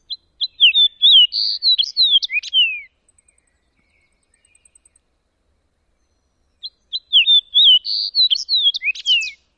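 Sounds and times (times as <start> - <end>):
songs of red subspecies: 0.0 - 9.5.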